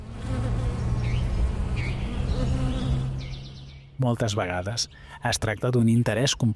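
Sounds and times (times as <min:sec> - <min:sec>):
bees buzzing around flowers in a field: 0:00.0 - 0:05.1
speech: 0:04.0 - 0:06.5.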